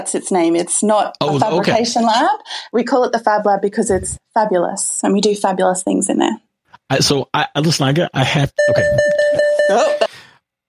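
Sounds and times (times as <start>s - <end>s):
speech: 0.0s - 10.1s
school bell sounding as a sustained electronic tone: 8.6s - 10.2s.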